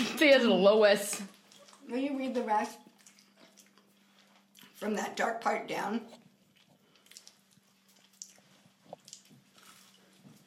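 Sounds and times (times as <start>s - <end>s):
speech: 0.2s - 2.9s, 4.8s - 6.2s
crackly munching on flaky puff pastry: 2.8s - 4.8s, 6.2s - 10.4s.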